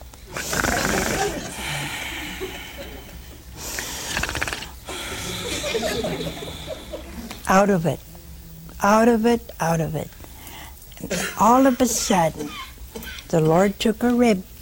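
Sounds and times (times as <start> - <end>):
person imitating snoring with rasping breaths: 0.3 - 2.7, 3.7 - 6.8
laughter: 0.8 - 3.6, 4.9 - 7.4
speech: 7.5 - 8.1, 8.8 - 10.2, 11.0 - 12.6, 13.3 - 14.5.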